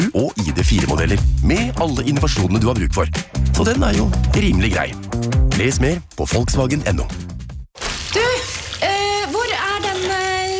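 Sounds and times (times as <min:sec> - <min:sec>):
speech: 0:00.6 - 0:07.3
water running from a tap: 0:07.8 - 0:10.5.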